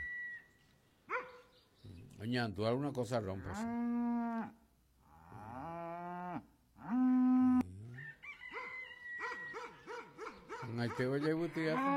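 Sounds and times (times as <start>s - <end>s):
speech: 2.2s - 3.9s, 10.8s - 11.9s
cow mooing loudly: 3.4s - 8.0s, 11.6s - 11.9s
rooster crowing: 7.9s - 9.8s.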